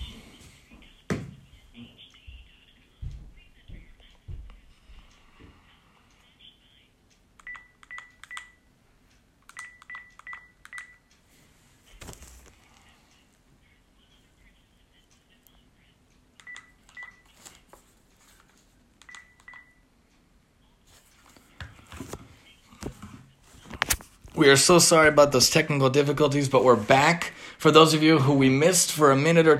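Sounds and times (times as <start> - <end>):
low hum of noise: 0.0 - 29.5
telephone keypad tones: 7.4 - 8.7, 9.5 - 11.1, 16.4 - 17.3, 19.1 - 19.8
speech: 24.4 - 29.5.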